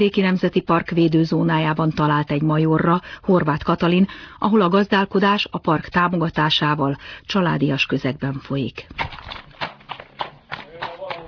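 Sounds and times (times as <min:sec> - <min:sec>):
speech: 0:00.0 - 0:09.4
carriage horses walking at a steady pace, hooves clip-clopping on a farm: 0:08.8 - 0:11.2.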